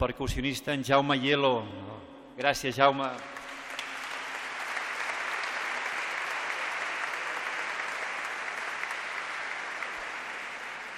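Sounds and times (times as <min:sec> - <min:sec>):
speech: 0:00.0 - 0:03.4
crowd applauding: 0:03.0 - 0:10.9.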